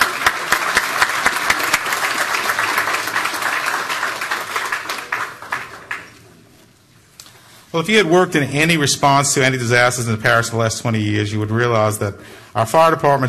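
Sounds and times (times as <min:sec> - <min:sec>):
audience applause: 0:00.0 - 0:06.4
speech: 0:07.8 - 0:13.2.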